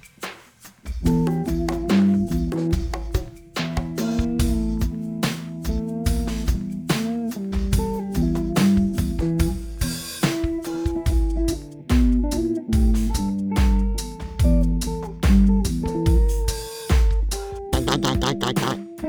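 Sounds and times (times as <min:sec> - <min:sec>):
slow funk music: 0:01.0 - 0:18.9.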